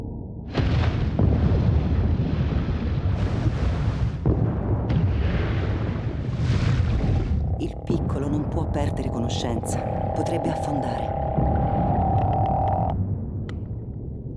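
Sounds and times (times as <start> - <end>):
underwater explosions: 0.5 - 14.3
speech: 8.5 - 11.2.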